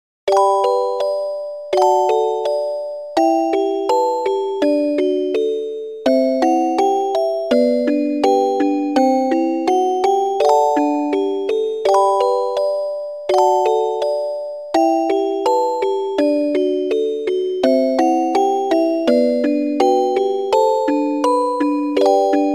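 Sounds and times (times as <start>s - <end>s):
single-line music box melody for flashback scenes: 0.3s - 22.5s.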